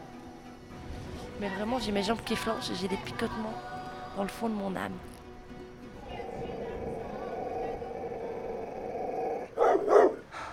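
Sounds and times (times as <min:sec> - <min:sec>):
speech: 0:01.4 - 0:05.1
shepherd dog growling: 0:06.0 - 0:10.3
shepherd dog barking: 0:09.4 - 0:10.3.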